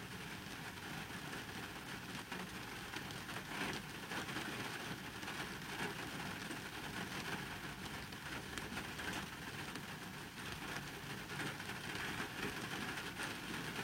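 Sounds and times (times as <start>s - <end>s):
heavy rain drumming on a parked car heard from inside: 0.0s - 13.8s.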